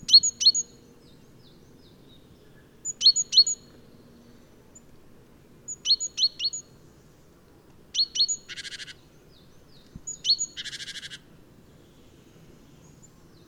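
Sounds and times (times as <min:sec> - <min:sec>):
low background hum: 0:00.0 - 0:13.4
great tit Parus major calling: 0:00.1 - 0:04.3, 0:05.7 - 0:06.7, 0:08.0 - 0:13.4.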